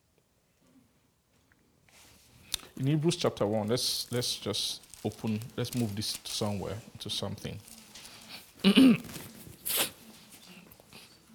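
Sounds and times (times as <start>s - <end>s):
speech: 2.8s - 7.7s, 8.6s - 9.3s
person sneezing: 8.6s - 10.0s.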